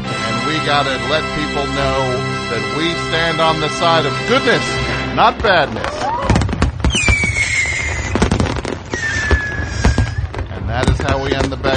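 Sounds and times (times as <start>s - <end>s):
speech: 0.7s - 6.0s
fireworks bangs and crackles: 2.8s - 11.7s
whistling fireworks streaks: 5.2s - 11.7s.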